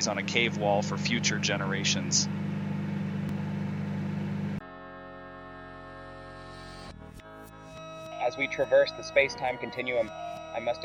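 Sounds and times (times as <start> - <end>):
speech: 0.0 - 2.5, 8.3 - 10.8
running microwave oven droning hum: 0.0 - 6.8.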